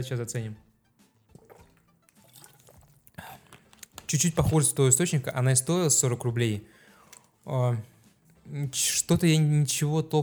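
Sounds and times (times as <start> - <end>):
speech: 0.0 - 0.7, 4.1 - 6.8, 7.4 - 7.9, 8.5 - 10.2
still water sloshing in a bottle: 0.9 - 5.1, 6.6 - 8.5
person gulping still water from a bottle: 1.0 - 5.0, 6.6 - 7.5.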